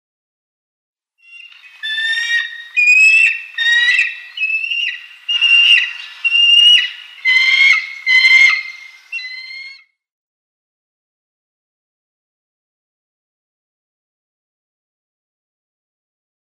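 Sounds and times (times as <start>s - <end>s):
White-tailed Eagle nestlings calling: 1.3s - 9.6s.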